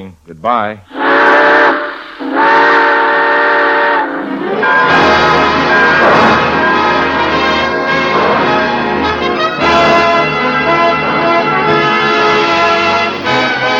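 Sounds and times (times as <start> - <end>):
speech: 0.0 - 2.6
steam train whistle: 0.9 - 13.7
train bell clanging: 4.8 - 12.1.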